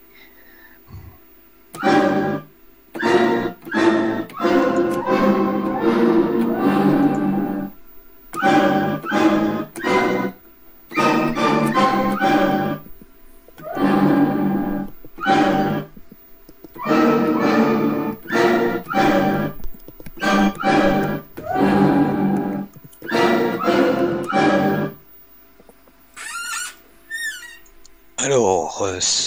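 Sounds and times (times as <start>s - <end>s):
lo-fi low-resolution 8-bit digital orchestra hit sample: 1.8s - 12.9s, 13.6s - 16.0s, 16.8s - 19.6s, 20.2s - 25.0s
high chirping tones: 1.8s - 25.0s.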